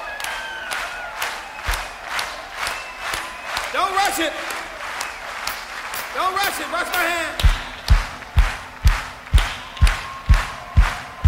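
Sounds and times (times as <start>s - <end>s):
group clapping hands together in unison: 0.0s - 11.2s
speech: 3.8s - 4.6s, 6.2s - 7.5s.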